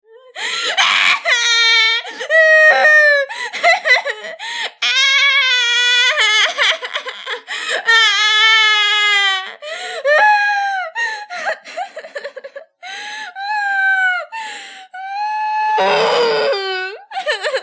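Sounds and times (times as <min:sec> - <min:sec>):
child crying miserably: 0:00.3 - 0:11.6, 0:15.0 - 0:17.6.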